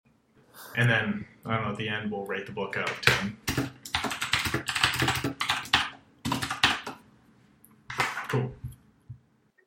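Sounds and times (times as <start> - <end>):
speech: 0.8 - 3.4, 8.4 - 8.7
clacky keystrokes typing on a mechanical keyboard: 3.5 - 7.0.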